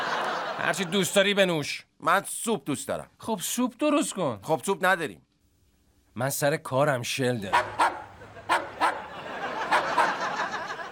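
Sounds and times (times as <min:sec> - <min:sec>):
laughter: 0:00.0 - 0:01.3, 0:07.6 - 0:10.8
speech: 0:00.6 - 0:05.3, 0:06.2 - 0:07.8
dog barking in a laboratory: 0:07.5 - 0:10.3.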